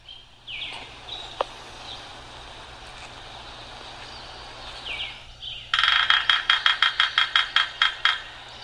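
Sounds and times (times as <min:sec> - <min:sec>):
bird calls: 0:00.0 - 0:08.6
steady outdoor hum: 0:00.0 - 0:08.6
woodpecker drumming on the metal base plate of a light pole: 0:05.7 - 0:08.6.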